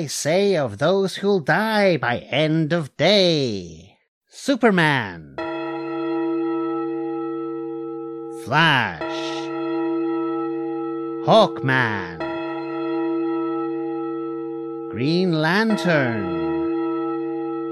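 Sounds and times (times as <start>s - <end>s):
speech: 0.0s - 5.4s, 8.4s - 9.3s, 11.2s - 12.2s, 14.9s - 16.4s
deep resonant clock bell ringing: 5.4s - 17.7s.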